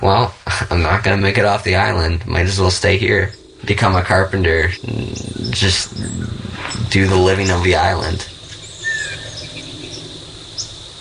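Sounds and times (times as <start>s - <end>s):
speech: 0.0s - 8.3s
steady insect drone: 0.0s - 10.9s
northern waterthrush chip calls: 2.2s - 10.9s.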